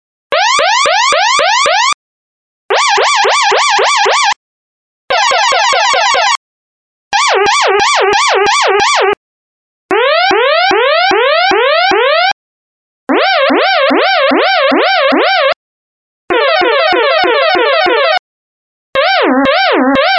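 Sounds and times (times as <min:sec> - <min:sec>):
siren: 0:00.3 - 0:02.0, 0:02.7 - 0:04.4, 0:05.1 - 0:06.4, 0:07.1 - 0:09.2, 0:09.9 - 0:12.4, 0:13.1 - 0:15.6, 0:16.3 - 0:18.2, 0:19.0 - 0:20.1.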